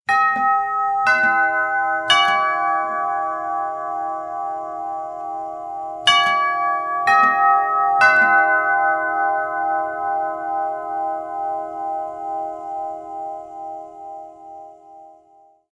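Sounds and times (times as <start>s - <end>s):
doorbell chime: 0.1s - 15.6s.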